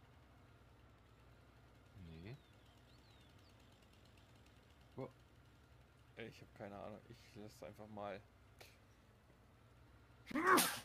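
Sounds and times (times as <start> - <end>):
speech: 5.0 - 5.2, 6.2 - 8.7, 10.3 - 10.6
person sneezing: 10.3 - 10.8.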